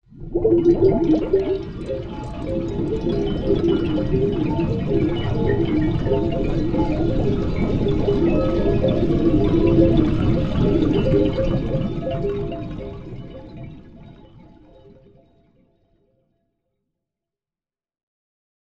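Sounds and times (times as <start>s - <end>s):
bubbles in a jar: 0.1s - 14.2s.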